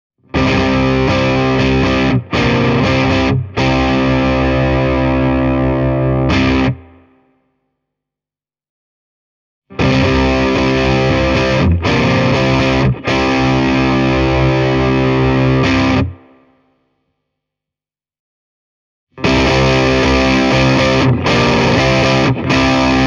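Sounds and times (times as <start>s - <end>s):
electric guitar through crunch channel amplifier with reverb and boost: 0.3s - 7.1s, 9.7s - 16.4s, 19.2s - 23.0s.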